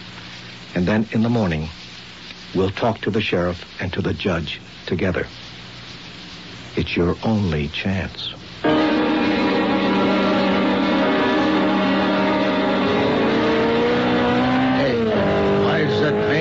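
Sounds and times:
speech: 0.7 - 1.8, 2.5 - 5.4, 6.8 - 8.8
high-revving sports car engine roaring past: 8.7 - 16.4
tire-squealing whine: 8.7 - 16.4.

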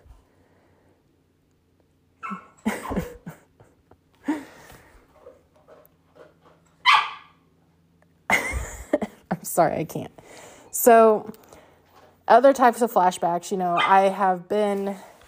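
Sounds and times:
low steady hum: 0.0 - 15.2
dog barking: 6.8 - 7.4, 13.8 - 14.0
speech: 9.6 - 11.4, 12.3 - 15.1.

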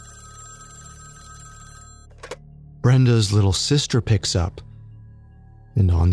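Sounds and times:
telephone ringing with a buzzing bell tone: 0.0 - 2.2
speech: 2.8 - 4.7, 5.8 - 6.1.

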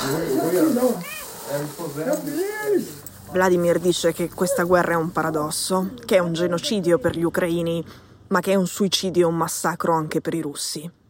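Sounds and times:
steady hiss: 0.0 - 6.1
speech: 0.1 - 11.0
cat meowing: 0.9 - 1.5.

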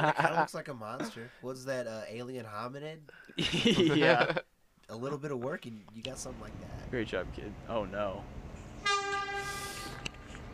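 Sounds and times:
laughter: 0.0 - 1.3, 3.4 - 4.4
speech: 0.0 - 8.4
rumble: 6.0 - 8.8
train horn blast: 8.7 - 10.3.

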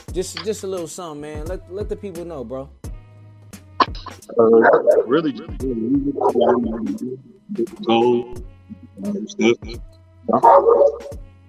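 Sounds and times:
speech: 0.2 - 2.8, 3.9 - 11.3
dog barking: 3.8 - 5.2, 10.3 - 11.2.

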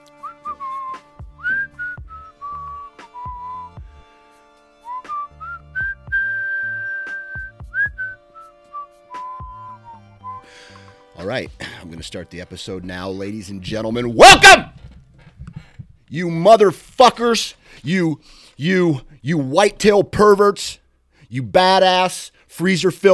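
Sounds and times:
person whistling a wandering tuneful melody: 0.1 - 3.8, 4.8 - 10.5
speech: 11.2 - 14.7, 16.1 - 23.1
soft thumps: 14.7 - 16.0.

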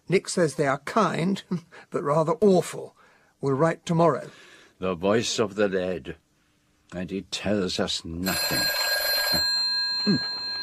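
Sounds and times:
speech: 0.1 - 6.2, 6.9 - 10.4
telephone ringing with a shrill electronic tone: 8.2 - 10.6.

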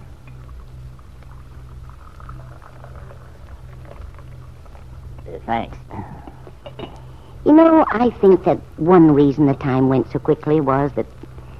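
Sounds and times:
low hum: 0.0 - 11.5
coffee pouring into a cup: 0.2 - 5.3
speech: 5.3 - 6.2, 7.4 - 11.2.

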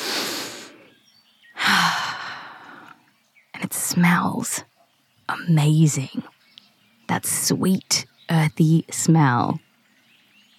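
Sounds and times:
person taking a deep breath outside on the grass: 0.0 - 0.9, 1.6 - 3.0
speech: 4.0 - 4.7, 5.3 - 6.4, 7.1 - 9.6.

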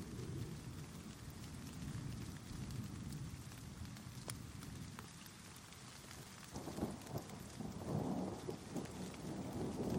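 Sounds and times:
steady rain hissing in a thunderstorm: 0.0 - 9.9
deep rolling rumble of thunder: 6.6 - 9.9.

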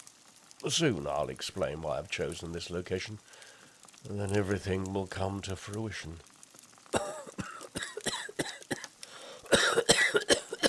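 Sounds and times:
speech: 0.6 - 3.4, 4.0 - 6.3
harsh hacking coughs into a handkerchief: 7.0 - 8.9, 9.5 - 10.6.

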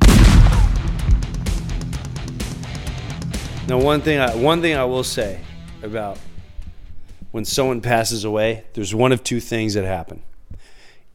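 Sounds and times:
cannon firing: 0.0 - 1.9
speech: 3.7 - 6.3, 7.3 - 10.3.

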